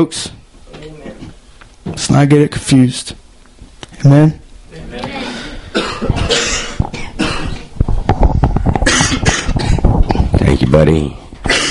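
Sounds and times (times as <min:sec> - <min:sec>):
speech: 0:00.0 - 0:00.4, 0:02.0 - 0:03.2, 0:04.0 - 0:05.1, 0:10.7 - 0:11.2
person coughing harshly: 0:05.3 - 0:07.7, 0:08.8 - 0:09.8, 0:11.4 - 0:11.6
throat clearing: 0:05.4 - 0:07.7, 0:08.8 - 0:10.2, 0:11.4 - 0:11.6.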